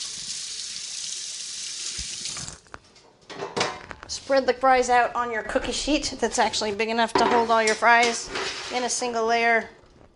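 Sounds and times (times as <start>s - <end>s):
water running from a kitchen tap over oily hands: 0.0s - 2.7s
speech: 4.1s - 9.8s.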